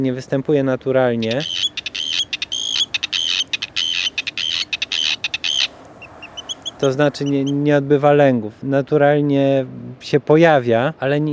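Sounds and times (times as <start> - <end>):
speech: 0.0 - 1.8, 6.8 - 11.3
Arctic tern calls with harsh grating notes: 0.0 - 8.6.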